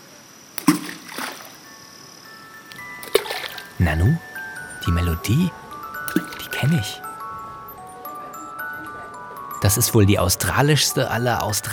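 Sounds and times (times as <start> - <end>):
faint steady tone: 0.0 - 11.7
thrown stones splashing into water: 0.6 - 1.6, 3.0 - 3.7
speech: 3.8 - 5.6, 6.6 - 7.0, 9.7 - 11.7.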